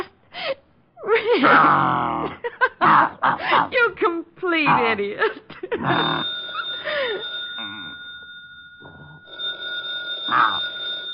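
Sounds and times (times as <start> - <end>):
speech: 1.3 - 2.4, 3.0 - 7.3
telephone ringing with a high electronic bell tone: 5.8 - 11.1.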